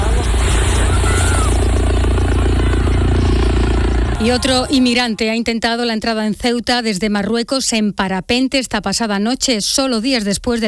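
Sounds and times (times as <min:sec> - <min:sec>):
police helicopter flying over beach with rotor throbbing: 0:00.0 - 0:06.4
speech: 0:04.2 - 0:10.6.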